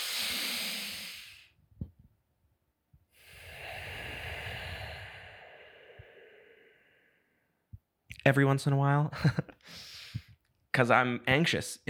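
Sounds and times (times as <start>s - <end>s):
deep slow breathing to calm anxiety: 0.0s - 1.6s, 3.1s - 7.9s
speech: 8.2s - 9.8s, 10.8s - 11.8s.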